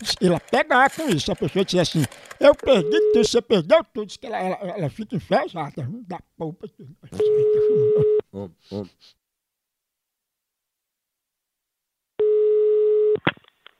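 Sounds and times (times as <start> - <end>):
speech: 0.0 - 9.2
telephone tone while placing a call: 2.7 - 3.3, 7.2 - 8.2, 12.2 - 13.2
laughter: 4.6 - 9.1.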